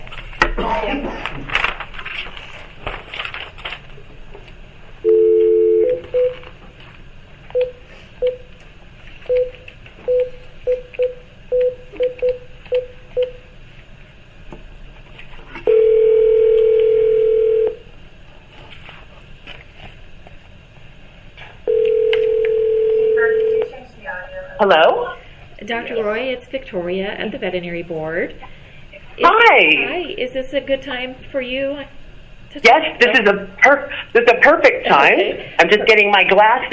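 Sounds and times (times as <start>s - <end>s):
faint noise: 0.0s - 36.7s
phone on speaker ring tone: 5.0s - 6.4s, 15.7s - 17.8s, 21.7s - 23.7s
phone on speaker keypad dialing tones: 5.0s - 6.5s, 7.5s - 8.5s, 9.2s - 13.4s, 15.7s - 17.8s, 21.7s - 23.7s
speech: 26.5s - 28.5s, 29.2s - 36.7s.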